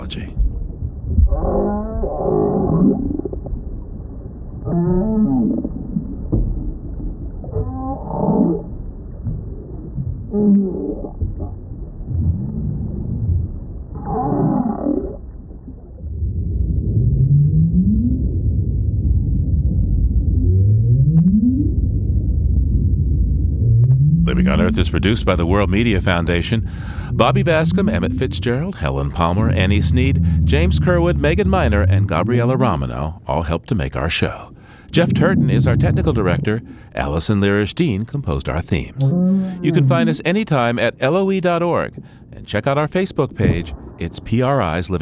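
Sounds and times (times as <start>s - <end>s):
steady underwater rumble: 0.0s - 44.9s
speech: 0.1s - 0.4s, 24.8s - 44.9s
northern right whale low groaning moans: 1.2s - 3.4s, 4.6s - 6.3s, 7.4s - 21.1s, 22.7s - 32.3s, 34.5s - 37.0s, 38.9s - 40.3s
northern right whale rising upsweep whoops: 39.0s - 40.1s.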